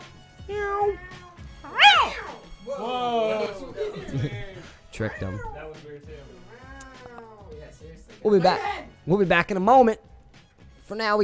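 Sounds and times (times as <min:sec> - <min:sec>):
cat meowing: 0:00.4 - 0:03.7
speech: 0:00.5 - 0:01.2, 0:04.0 - 0:06.3, 0:08.2 - 0:10.1, 0:10.9 - 0:11.2
laughter: 0:02.6 - 0:05.5.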